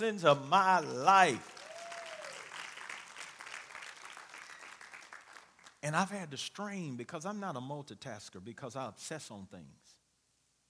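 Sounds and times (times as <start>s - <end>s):
speech: 0.0s - 1.6s, 5.8s - 10.0s
audience applause: 1.2s - 5.8s.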